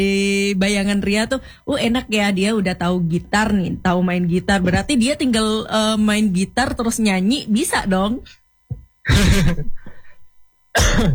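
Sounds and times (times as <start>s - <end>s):
speech: 0.0s - 8.4s, 9.0s - 9.8s, 10.8s - 11.1s
throat-clearing rasps: 8.7s - 10.2s, 10.8s - 11.1s
person coughing: 9.1s - 10.2s, 10.8s - 11.1s.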